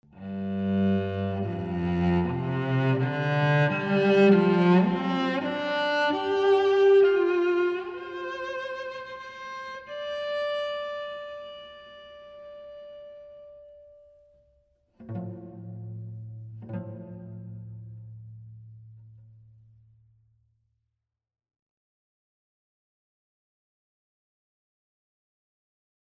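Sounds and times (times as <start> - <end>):
cello: 0.0 - 19.7.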